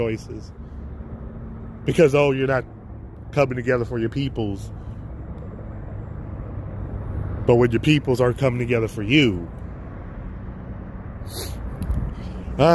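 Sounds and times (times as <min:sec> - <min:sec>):
speech: 0:00.0 - 0:00.7, 0:01.8 - 0:04.8, 0:07.4 - 0:09.6, 0:11.3 - 0:11.6, 0:12.6 - 0:12.7
bus moving through traffic: 0:00.0 - 0:12.7
short sharp hiss: 0:11.2 - 0:11.8.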